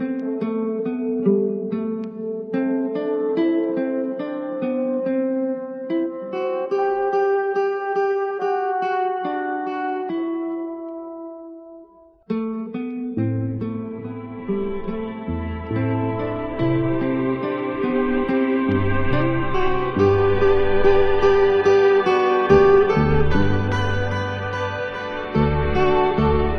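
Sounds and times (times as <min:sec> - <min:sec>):
sad guitar loop: 0:00.0 - 0:26.5
sad strings loop: 0:13.2 - 0:26.5.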